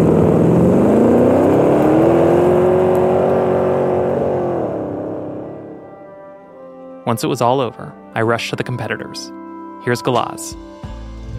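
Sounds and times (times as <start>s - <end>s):
two race car engines accelerating hard from a standstill at a race start: 0.0s - 6.4s
speech: 7.1s - 11.0s.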